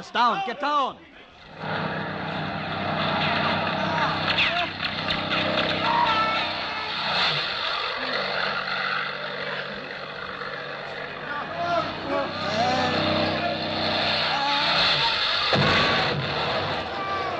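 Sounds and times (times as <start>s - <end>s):
speech: 0.0s - 1.8s
two low-flying airplanes roaring overhead in the desert: 1.4s - 17.3s.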